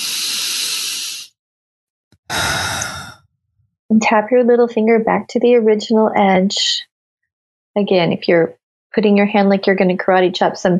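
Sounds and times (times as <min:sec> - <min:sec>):
big deep breath inhale and exhale during a guided tapping meditation: 0:00.0 - 0:01.3, 0:02.2 - 0:03.3
speech: 0:03.9 - 0:06.9, 0:07.8 - 0:10.7.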